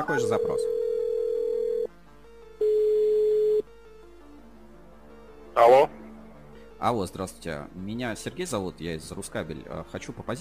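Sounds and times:
speech: 0:00.0 - 0:00.8, 0:05.6 - 0:06.0, 0:06.8 - 0:10.3
ringing tone of a telephone call being dialed: 0:00.0 - 0:01.9, 0:02.6 - 0:03.6.

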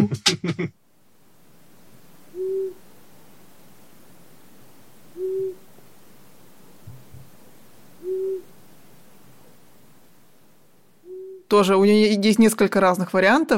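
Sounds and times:
laughter: 0:00.0 - 0:00.7
speech: 0:00.0 - 0:00.7, 0:11.5 - 0:13.5
long-eared owl hooting: 0:02.3 - 0:02.8, 0:05.1 - 0:05.7, 0:08.0 - 0:08.6, 0:11.0 - 0:11.5.

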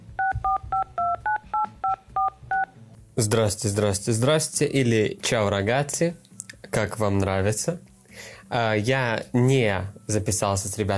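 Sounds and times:
touch-tone phone dialing beeps: 0:00.2 - 0:02.7
speech: 0:03.2 - 0:06.2, 0:06.8 - 0:10.9.

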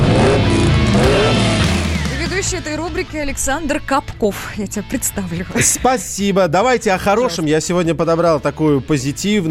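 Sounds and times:
car engine revving as it accelerates: 0:00.0 - 0:05.4
speech: 0:02.4 - 0:09.4.

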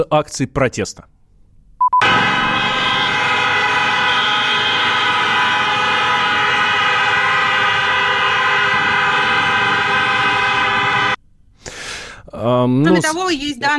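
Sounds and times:
speech: 0:00.0 - 0:01.1, 0:12.4 - 0:13.7
many car horns honking at a street protest in Belarus: 0:02.0 - 0:11.2.

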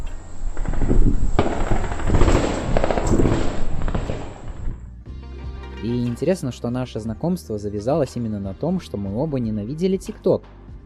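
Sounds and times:
loud continuous rumble: 0:00.0 - 0:05.0
bursts of gunfire: 0:00.6 - 0:04.9
speech: 0:06.2 - 0:10.6.

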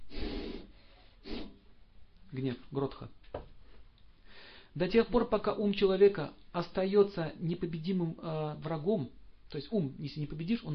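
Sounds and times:
person imitating angry snorting breaths of a child: 0:00.1 - 0:01.6
speech: 0:02.3 - 0:03.5, 0:04.7 - 0:10.7.

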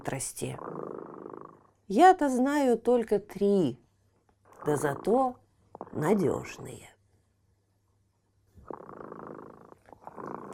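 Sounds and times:
speech: 0:00.0 - 0:00.9, 0:01.9 - 0:03.8, 0:04.6 - 0:06.9
cat purring: 0:00.0 - 0:02.6, 0:04.5 - 0:06.6, 0:08.6 - 0:10.5.

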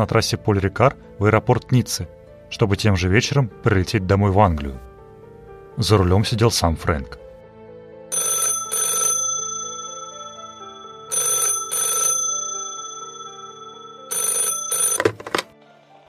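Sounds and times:
speech: 0:00.0 - 0:04.9, 0:05.8 - 0:07.2
telephone bell ringing in double bursts: 0:08.1 - 0:15.5.

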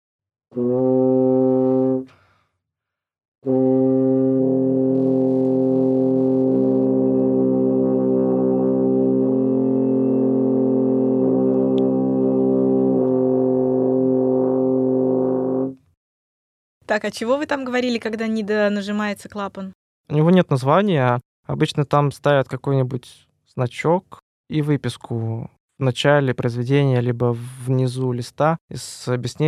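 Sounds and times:
speech: 0:00.5 - 0:00.9, 0:03.4 - 0:03.7, 0:17.0 - 0:29.4
French horn note with the player singing into the mouthpiece: 0:00.5 - 0:02.1, 0:03.4 - 0:15.8
French horn playing a note: 0:03.4 - 0:15.8.

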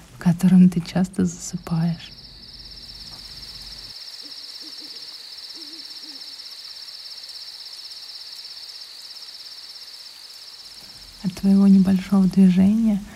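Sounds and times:
speech: 0:00.3 - 0:02.2, 0:11.4 - 0:13.1
high chorus of insects in a night forest: 0:01.4 - 0:13.1
owl hooting in a night forest: 0:02.0 - 0:08.7.

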